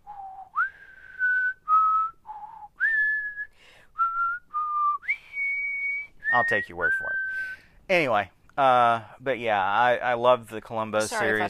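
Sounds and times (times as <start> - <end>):
person whistling a TV theme tune: 0.0 - 7.6
speech: 6.4 - 11.4.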